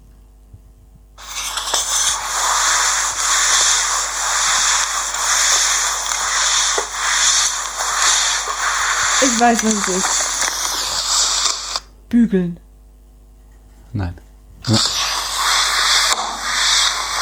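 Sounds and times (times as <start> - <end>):
mop wiped across a floor in back-and-forth swishes: 1.2 - 11.2, 14.9 - 17.1
speech: 9.4 - 10.3, 12.1 - 12.6.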